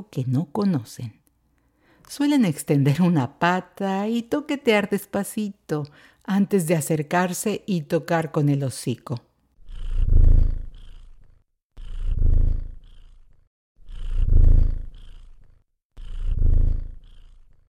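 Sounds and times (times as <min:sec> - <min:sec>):
speech: 0:00.0 - 0:01.2, 0:02.1 - 0:09.3
cat purring: 0:09.6 - 0:17.6.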